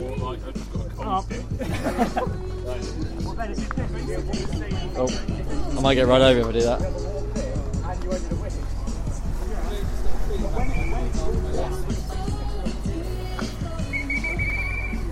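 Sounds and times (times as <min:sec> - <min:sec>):
laughter: 0:00.0 - 0:04.9
outdoor chatter: 0:00.0 - 0:15.0
speech: 0:01.1 - 0:07.0
passing traffic: 0:02.3 - 0:15.0
whistle blown in short sharp bursts: 0:10.5 - 0:11.2, 0:13.8 - 0:15.0.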